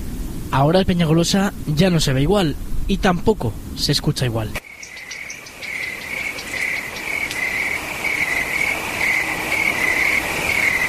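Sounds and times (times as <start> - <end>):
soft breezy hiss on a mountain: 0.0 - 10.8
speech: 0.5 - 4.6
crickets and other night insects chirping on a mountain after sunset: 4.6 - 10.8.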